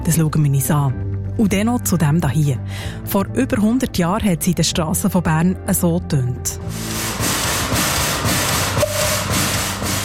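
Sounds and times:
speech: 0.1s - 7.3s
steam locomotive chuffing while pulling a tram: 6.7s - 10.0s
brief whistle-like tone: 8.8s - 9.6s.

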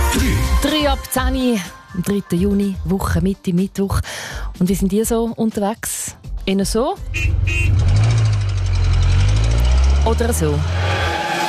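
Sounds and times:
speech: 0.2s - 8.0s, 10.0s - 10.8s
car engine running with a low rumble: 6.6s - 11.4s.

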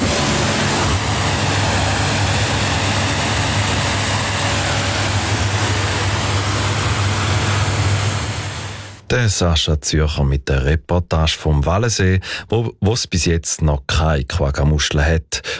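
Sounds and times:
pressure washer spraying water hosing down a motorboat: 0.0s - 9.0s
speech: 9.1s - 15.5s.

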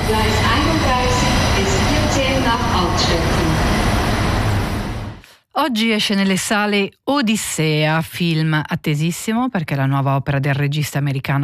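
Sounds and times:
train departing from the platform rumbling along the rails: 0.0s - 5.2s
speech: 5.6s - 11.4s.

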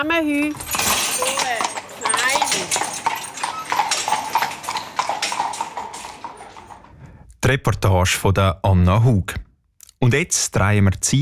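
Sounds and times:
speech: 0.0s - 3.1s, 7.5s - 9.4s, 10.0s - 11.2s
hooves of horses pulling a carriage filled with compost: 0.0s - 7.1s.

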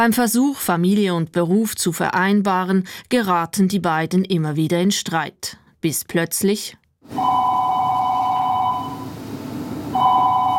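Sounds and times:
speech: 0.0s - 7.5s
telephone ringing with a warbling electronic double tone: 7.1s - 10.5s.

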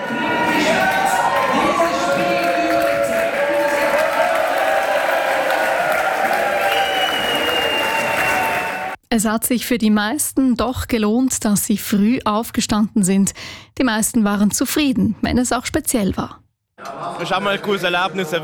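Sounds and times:
football fans cheering at a World Cup public viewing in a restaurant: 0.0s - 9.0s
football fans shouting: 0.0s - 9.0s
football fans clapping: 0.8s - 9.0s
whistles: 6.6s - 9.0s
speech: 9.2s - 16.4s, 17.2s - 18.4s.

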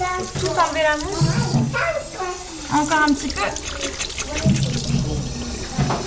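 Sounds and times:
tap water running at a sink while rinsing soap off a child's hands: 0.0s - 6.0s
speech: 0.7s - 1.9s, 2.7s - 4.5s.

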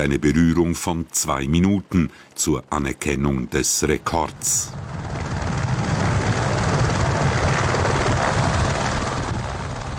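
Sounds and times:
speech: 0.0s - 5.2s
helicopter flying: 4.1s - 9.9s.

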